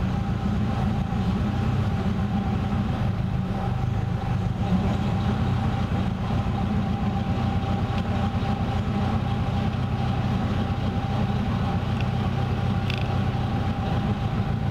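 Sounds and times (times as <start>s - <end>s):
Phantom IV state limousine type car engine idling at about 400 RPM: 0.0s - 14.7s.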